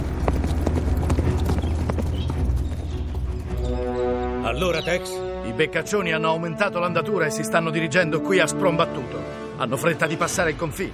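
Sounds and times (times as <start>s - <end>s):
horse hooves clip-clopping: 0.0s - 3.8s
speech: 4.6s - 10.9s.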